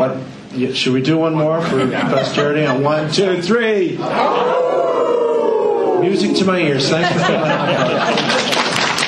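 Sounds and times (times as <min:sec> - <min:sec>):
speech: 0:00.1 - 0:04.9, 0:06.0 - 0:08.7
laughter: 0:01.6 - 0:03.4, 0:04.0 - 0:05.0, 0:06.3 - 0:09.0
several people howling together in imitation of a wolf: 0:04.2 - 0:06.0.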